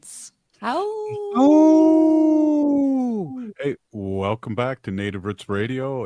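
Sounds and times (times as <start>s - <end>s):
speech: 0.6s - 1.8s, 3.6s - 6.0s
wolf howling: 1.0s - 3.4s.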